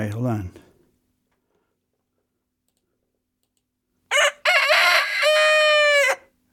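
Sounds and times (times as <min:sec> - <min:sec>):
speech: 0:00.0 - 0:00.6
rooster crowing: 0:04.1 - 0:06.3.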